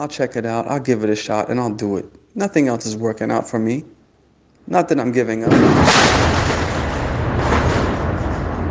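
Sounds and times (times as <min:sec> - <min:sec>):
speech: 0:00.0 - 0:04.0, 0:04.7 - 0:06.4
deep booming explosions from American airstrikes: 0:05.4 - 0:08.7.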